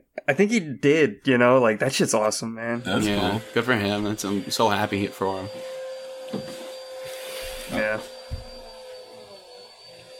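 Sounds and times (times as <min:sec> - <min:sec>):
speech: 0:00.3 - 0:06.6, 0:07.7 - 0:08.2
vacuum cleaner droning in another room: 0:02.7 - 0:10.1.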